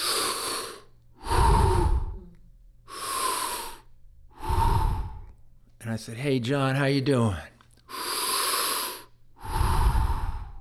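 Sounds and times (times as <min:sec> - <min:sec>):
voice imitating labored breathing of a man on oxygen: 0:00.0 - 0:05.4, 0:07.8 - 0:10.6
speech: 0:05.9 - 0:07.5.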